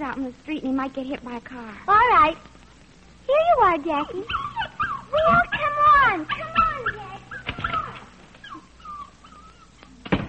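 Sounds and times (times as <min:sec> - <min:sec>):
speech: 0:00.1 - 0:02.6, 0:03.3 - 0:04.5
dog whimpering and whining: 0:04.1 - 0:10.0.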